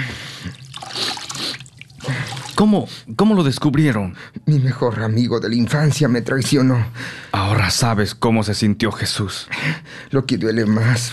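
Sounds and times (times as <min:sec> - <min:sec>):
water poured to clean wounds: 0:00.4 - 0:02.9
speech: 0:02.6 - 0:11.1.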